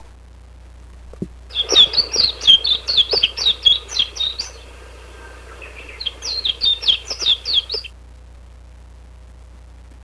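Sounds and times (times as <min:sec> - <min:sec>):
mejiro: 0:01.5 - 0:08.0.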